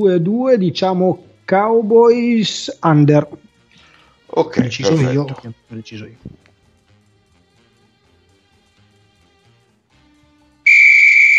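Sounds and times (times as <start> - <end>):
speech: 0.0 - 3.4, 4.3 - 6.4
loud shrill whistle blast: 10.6 - 11.3.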